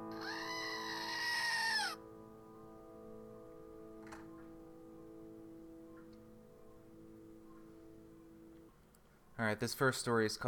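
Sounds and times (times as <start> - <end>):
goat bleating: 0.2 - 2.0
speech: 9.4 - 10.4.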